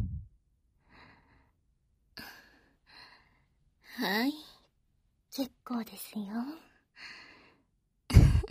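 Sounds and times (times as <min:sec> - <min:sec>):
slow breathing in and out, guided to ease shortness of breath: 0:00.7 - 0:03.8, 0:06.8 - 0:07.8
speech: 0:04.0 - 0:04.5, 0:05.4 - 0:07.2.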